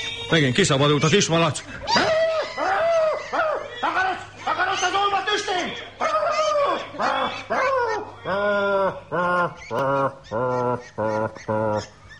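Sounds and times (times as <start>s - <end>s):
speech: 0.3s - 2.1s
laughter: 1.7s - 11.9s
ducks disturbed in a puddle on a farmstead quacking: 4.4s - 12.1s.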